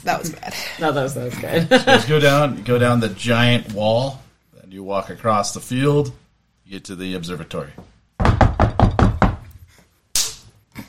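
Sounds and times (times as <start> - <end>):
speech: 0.0 - 8.3
quick knocks on a door: 7.8 - 9.5
sharp hand slap like a high five: 10.1 - 10.5.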